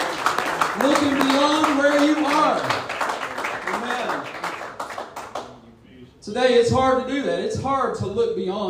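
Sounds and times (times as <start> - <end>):
audience clapping hands: 0.0 - 5.6
speech: 6.3 - 8.6.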